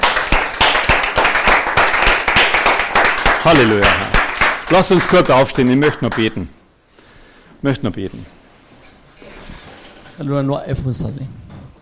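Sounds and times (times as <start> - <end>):
audience applauding: 0.0 - 6.4
speech: 3.4 - 4.1, 4.7 - 6.6, 7.6 - 8.4, 10.2 - 11.4.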